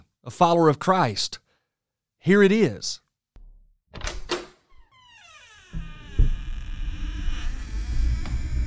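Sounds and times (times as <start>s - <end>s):
speech: 0.2s - 1.4s, 2.2s - 3.0s
door latch clicks: 4.0s - 4.6s
long creaking door hinge squeal: 4.0s - 8.6s
solid door thunk: 5.7s - 6.7s.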